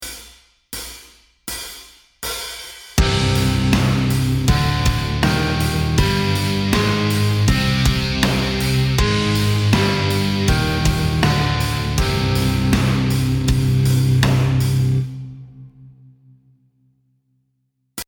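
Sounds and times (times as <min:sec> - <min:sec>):
melody in the C Hirajoshi scale: 0:03.0 - 0:15.0.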